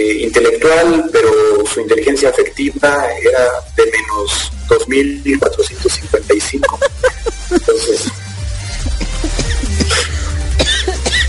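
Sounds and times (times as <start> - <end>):
speech: 0.0 - 8.3
laughter: 5.4 - 11.2
short rough coughs: 6.2 - 8.2, 8.8 - 11.2.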